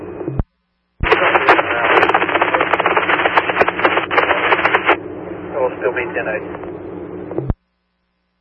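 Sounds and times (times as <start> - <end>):
crackling radio static: 1.0 - 7.6
speech: 5.9 - 6.8.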